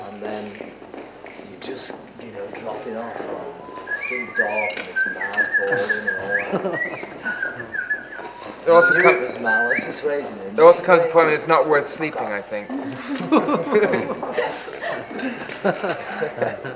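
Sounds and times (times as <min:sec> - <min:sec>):
speech: 0:01.7 - 0:07.8, 0:08.7 - 0:16.7
laughter: 0:02.6 - 0:16.7
person whistling a warbling birdlike tune imitating birdsong: 0:03.6 - 0:10.2.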